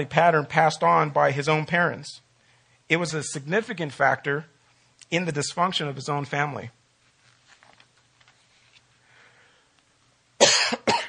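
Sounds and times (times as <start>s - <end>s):
speech: 0.0s - 2.2s, 2.9s - 6.8s
harsh coughs: 10.4s - 11.0s.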